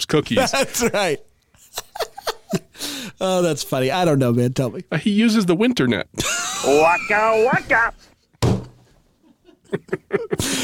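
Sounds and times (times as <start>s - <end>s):
speech: 0.0s - 1.3s, 3.2s - 8.1s, 9.7s - 10.6s
laughter: 0.3s - 2.8s, 6.2s - 8.0s, 9.2s - 10.6s
hand slapping a tabletop: 8.4s - 8.8s.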